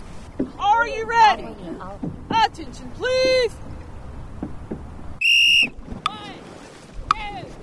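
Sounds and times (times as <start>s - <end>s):
low rumble of wind and water outdoors: 0.0s - 7.6s
speech: 0.8s - 3.7s
sharp sustained whistle blast aboard a dragon boat on the water: 5.2s - 5.8s.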